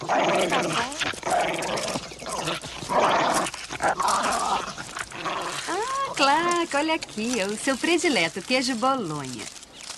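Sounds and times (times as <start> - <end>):
speech: 0.0 - 1.7, 6.8 - 9.6
dog barking and growling: 0.0 - 6.2.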